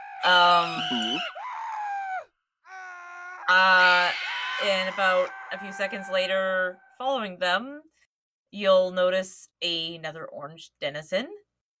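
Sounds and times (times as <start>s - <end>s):
people screaming: 0.0s - 7.0s
speech: 0.2s - 1.4s, 3.5s - 11.4s.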